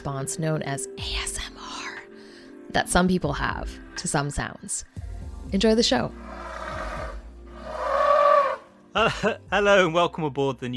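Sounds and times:
speech: 0:00.0 - 0:01.4, 0:02.8 - 0:06.4, 0:09.0 - 0:10.7
elephant breathing heavily: 0:06.1 - 0:08.6.

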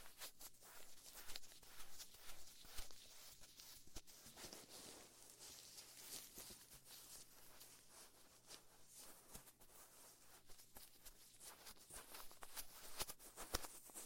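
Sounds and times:
soft cotton swab strokes: 0:00.0 - 0:14.0
soft ear brushing and rubbing near the ear: 0:00.0 - 0:14.0.

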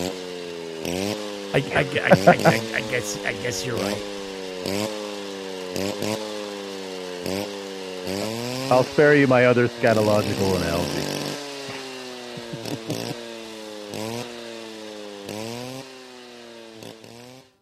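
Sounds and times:
speech: 0:00.8 - 0:05.0, 0:05.8 - 0:06.2, 0:07.2 - 0:11.2
laughter: 0:01.6 - 0:04.0, 0:12.4 - 0:13.2
chainsaw running: 0:04.3 - 0:08.8, 0:10.0 - 0:17.4.

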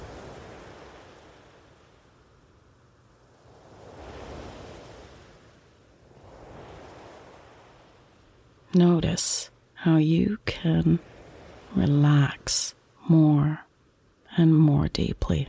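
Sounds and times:
continuous hiss of surf: 0:00.0 - 0:08.6, 0:10.9 - 0:11.8
ocean waves washing onto shore: 0:00.0 - 0:09.8, 0:10.4 - 0:13.0
light breeze: 0:00.0 - 0:15.4
speech: 0:08.7 - 0:11.1, 0:11.7 - 0:13.6, 0:14.4 - 0:15.4.

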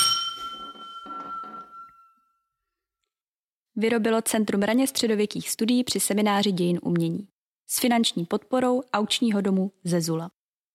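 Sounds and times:
glasses clinking in a toast: 0:00.0 - 0:02.2
speech: 0:03.8 - 0:10.4.

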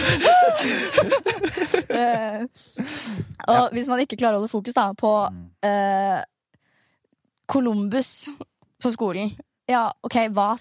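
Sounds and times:
sharp gasp for breath of a speaker getting worked up: 0:00.0 - 0:01.0, 0:02.7 - 0:03.4
laughter: 0:00.0 - 0:02.5
speech: 0:03.5 - 0:06.3, 0:07.5 - 0:10.5.

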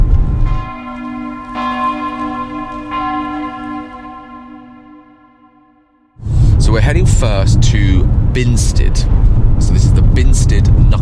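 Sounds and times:
church bell tolling: 0:00.0 - 0:06.2
speech: 0:06.8 - 0:09.3, 0:10.2 - 0:11.0.

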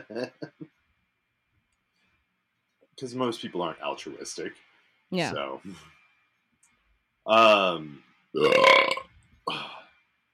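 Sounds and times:
laughter: 0:00.0 - 0:00.5, 0:07.3 - 0:07.8
speech: 0:00.1 - 0:00.5, 0:03.0 - 0:06.0, 0:07.2 - 0:09.6
person burping: 0:08.4 - 0:09.8.

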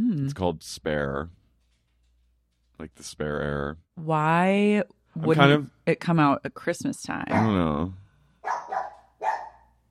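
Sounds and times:
speech: 0:00.3 - 0:01.4, 0:02.8 - 0:08.8
dog barking: 0:07.3 - 0:07.7, 0:08.4 - 0:09.8.

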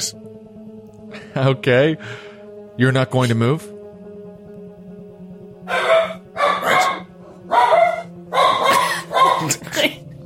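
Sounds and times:
speech: 0:01.4 - 0:03.7
dogs barking: 0:05.7 - 0:09.8.

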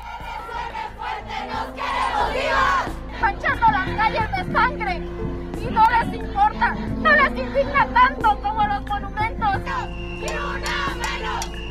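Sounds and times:
large protest crowd chanting and shouting outdoors in the streets of Mexico: 0:00.0 - 0:11.6
speech: 0:03.9 - 0:10.6.

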